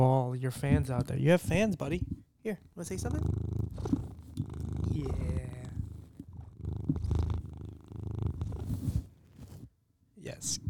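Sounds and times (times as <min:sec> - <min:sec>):
speech: 0:00.0 - 0:04.0, 0:04.9 - 0:05.4, 0:10.4 - 0:10.6
rustling and thumps as a cat rubs against the microphone: 0:00.5 - 0:02.3, 0:03.0 - 0:09.8
cat purring close to the microphone: 0:00.5 - 0:09.8.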